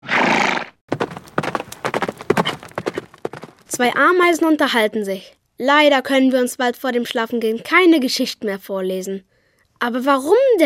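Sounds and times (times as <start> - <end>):
horse neighing: 0.0 - 3.6
horse hooves clip-clopping on a hard surface: 0.9 - 4.0
speech: 3.8 - 10.6.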